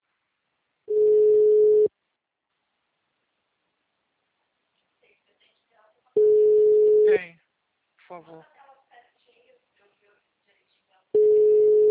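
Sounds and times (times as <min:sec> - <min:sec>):
telephone line tone while a call is being placed: 0:00.9 - 0:01.9, 0:06.2 - 0:07.1, 0:11.2 - 0:11.8
speech: 0:08.1 - 0:08.6.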